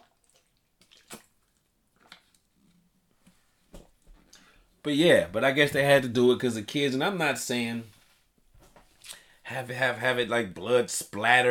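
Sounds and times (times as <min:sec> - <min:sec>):
wet sips of someone drinking water: 0:00.3 - 0:01.3
speech: 0:04.8 - 0:08.0, 0:09.5 - 0:11.4.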